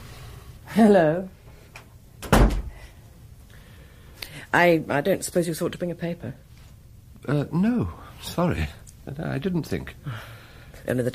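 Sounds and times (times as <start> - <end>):
speech: 0.7 - 1.4, 4.5 - 6.4, 7.2 - 11.1
door being shut indoors: 2.2 - 2.8.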